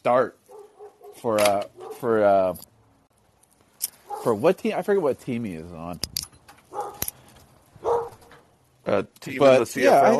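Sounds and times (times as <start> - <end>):
speech: 0.0 - 0.4, 1.2 - 2.7, 4.2 - 6.2, 8.8 - 10.1
dog barking out back behind the house: 0.5 - 1.2, 1.8 - 2.1, 4.1 - 4.4, 6.7 - 7.0, 7.8 - 8.3.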